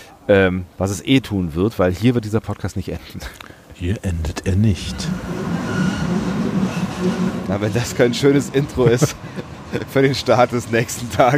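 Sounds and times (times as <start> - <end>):
speech: 0.3 - 5.4, 7.0 - 11.3
passing train rumbling with rattling wheels: 4.7 - 11.3
laughter: 7.5 - 11.3.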